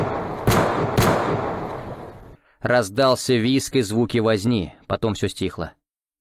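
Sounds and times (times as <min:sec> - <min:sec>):
gunshots fired one-handed at night near a ramshackle hut: 0:00.0 - 0:02.4
speech: 0:02.6 - 0:05.8.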